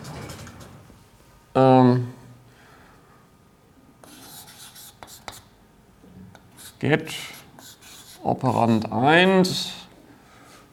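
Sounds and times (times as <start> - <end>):
handwriting strokes, soft scratchy rubbing: 4.0 - 5.4, 6.6 - 8.3
speech: 6.8 - 7.4, 8.2 - 9.8.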